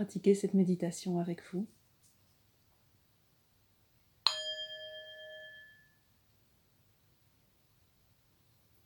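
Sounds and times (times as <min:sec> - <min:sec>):
speech: 0:00.0 - 0:01.8
meditation bell struck during a guided meditation: 0:04.3 - 0:06.1.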